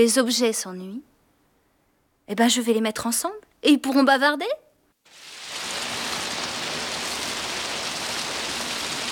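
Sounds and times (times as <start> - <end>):
speech: 0.0 - 1.1, 2.3 - 5.2
steady rain pouring down in a garden: 5.1 - 9.1.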